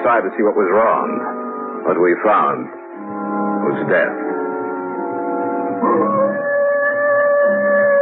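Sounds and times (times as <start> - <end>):
speech: 0.1 - 2.8, 3.6 - 4.4, 5.8 - 6.4
wolf howling: 3.4 - 8.0.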